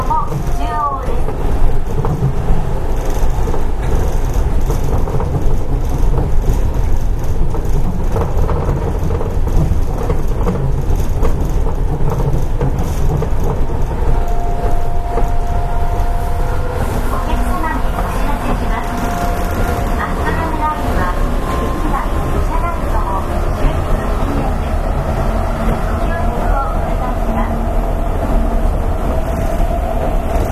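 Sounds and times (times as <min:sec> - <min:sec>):
train rumbling heard from inside the car: 0:00.0 - 0:30.5
high train motor whine: 0:13.8 - 0:25.8
faint voices: 0:15.1 - 0:27.7.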